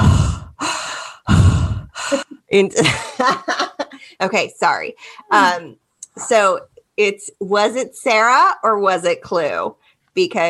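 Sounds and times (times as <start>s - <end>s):
voice imitating heavy raspy breathing of a creepy prank caller: 0.0s - 2.3s
speech: 2.5s - 3.6s, 4.2s - 10.4s.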